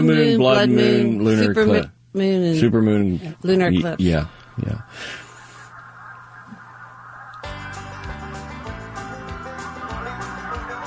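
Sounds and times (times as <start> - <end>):
speech: 0.0 - 5.2
geese honking: 4.3 - 10.8.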